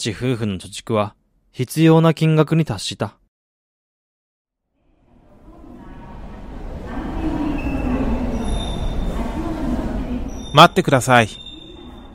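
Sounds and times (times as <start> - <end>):
speech: 0.0 - 3.2, 10.6 - 11.4
Shinkansen bullet train roaring at a station platform: 5.0 - 12.1.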